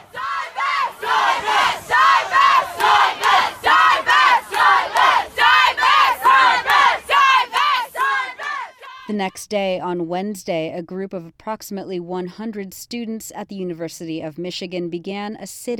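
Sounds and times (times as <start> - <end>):
crowd of pro-divestment students chanting at a rally outside a building: 0.0 - 9.1
speech: 9.2 - 15.7.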